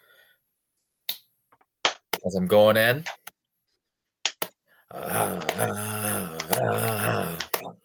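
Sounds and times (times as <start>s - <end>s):
hand clapping: 1.8s - 2.2s, 4.2s - 4.6s, 5.2s - 7.7s
speech: 2.2s - 3.2s, 5.6s - 5.9s, 6.6s - 7.4s.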